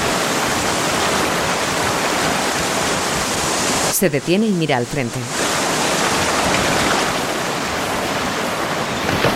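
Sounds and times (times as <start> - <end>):
strong river current rushing over large rocks: 0.0 - 9.3
speech: 4.0 - 5.4.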